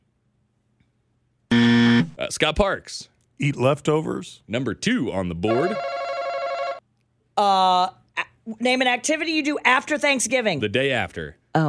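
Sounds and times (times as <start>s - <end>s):
loud harsh game show buzzer: 1.5s - 2.1s, 5.5s - 6.8s
speech: 2.3s - 5.9s, 7.4s - 11.6s.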